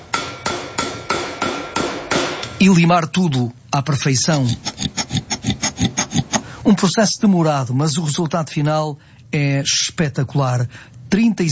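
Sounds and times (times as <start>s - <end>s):
hammer taps trimming loose ends on a malachite-based piece: 0.0s - 2.6s
speech: 2.6s - 5.0s, 6.7s - 11.5s.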